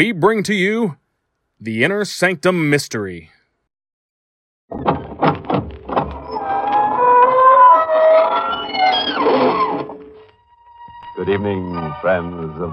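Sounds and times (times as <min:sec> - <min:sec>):
speech: 0:00.0 - 0:01.0, 0:01.6 - 0:03.4, 0:11.2 - 0:12.7
dull knocks: 0:04.7 - 0:06.2
door creaking open slowly in a wavering squeal: 0:04.7 - 0:11.1.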